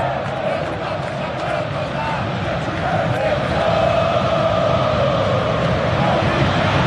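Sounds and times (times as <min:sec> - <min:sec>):
large stadium crowd of football supporters roaring and chanting: 0:00.0 - 0:06.8.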